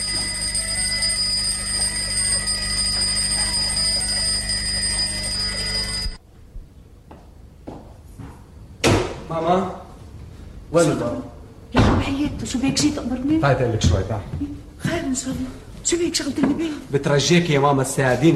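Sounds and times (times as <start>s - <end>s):
large alarm clock ringing with harsh metallic bell clatter: 0.0s - 6.2s
speech: 9.4s - 9.8s, 10.8s - 11.3s, 12.0s - 18.3s.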